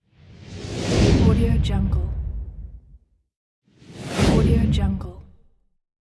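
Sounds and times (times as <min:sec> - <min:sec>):
transition and movement whooshes: 0:00.0 - 0:03.0, 0:03.8 - 0:05.1.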